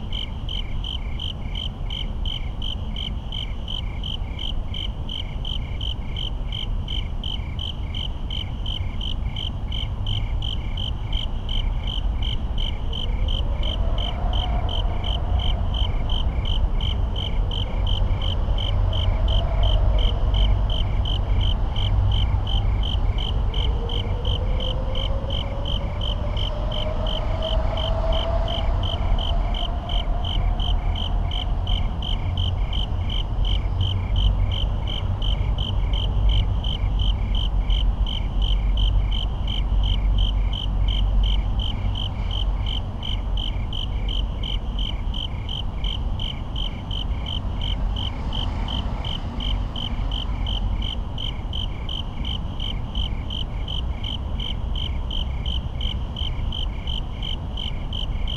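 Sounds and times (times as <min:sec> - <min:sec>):
rapid traffic echoes: 0:00.0 - 0:58.3
suburban night crickets chirping: 0:00.0 - 0:58.3.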